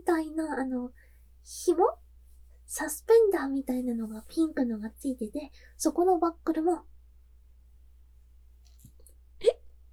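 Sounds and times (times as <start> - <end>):
speech: 0.2 - 2.0, 2.7 - 6.9
hiccup: 9.4 - 9.7.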